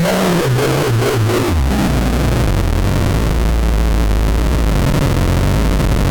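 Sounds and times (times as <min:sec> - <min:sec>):
rumble: 0:00.2 - 0:06.0.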